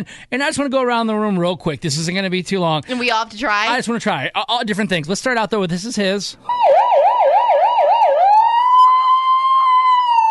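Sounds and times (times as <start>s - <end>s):
speech: 0.0s - 6.7s
person imitating a police car siren with their voice: 6.5s - 10.2s.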